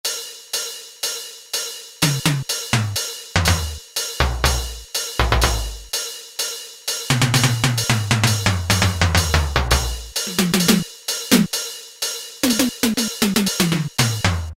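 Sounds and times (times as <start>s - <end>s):
Kawai K1m synthesizer factory patch hi-hat: 0.1s - 14.5s
Kawai K1m synthesizer factory patch tom: 2.0s - 5.9s, 7.1s - 11.5s, 12.4s - 14.5s.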